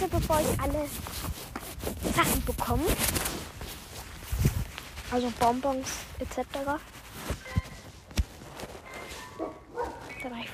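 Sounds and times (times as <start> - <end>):
speech: 0.0 - 3.4, 5.1 - 7.4
dog barking: 9.2 - 10.2.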